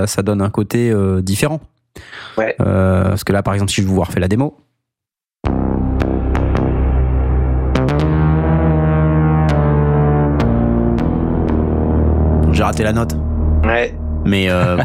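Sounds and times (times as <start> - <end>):
speech: 0.0 - 4.7, 12.6 - 14.8
deep synth bass with long roomy reverb: 5.4 - 14.8
laughter: 14.4 - 14.8.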